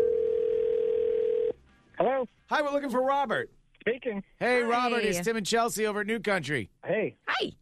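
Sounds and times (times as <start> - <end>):
steady telephone tone like a line ringing through: 0.0 - 1.6
speech: 2.2 - 7.6.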